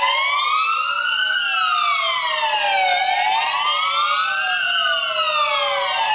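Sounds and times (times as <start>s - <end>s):
emergency vehicle siren wailing: 0.0s - 6.1s.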